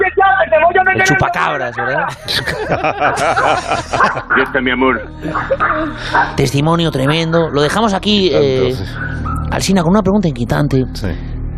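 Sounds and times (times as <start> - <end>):
laughter: 1.0 - 6.4
speech: 1.0 - 11.3
dog barking and yipping: 3.2 - 4.3, 8.9 - 9.6.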